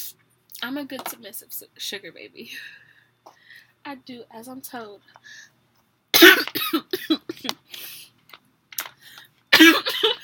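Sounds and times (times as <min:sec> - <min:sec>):
speech: 0:00.6 - 0:05.5, 0:06.2 - 0:07.9
breathing: 0:02.5 - 0:03.8, 0:05.1 - 0:05.6, 0:07.7 - 0:08.2, 0:08.9 - 0:09.4
person coughing while laughing: 0:06.2 - 0:07.6, 0:09.5 - 0:10.2.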